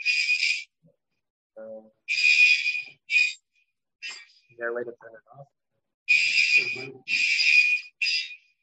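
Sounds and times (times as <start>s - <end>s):
alarm going off: 0.0s - 0.7s, 2.1s - 3.4s, 6.1s - 8.4s
people talking: 1.6s - 1.9s, 4.6s - 5.4s, 6.5s - 7.2s.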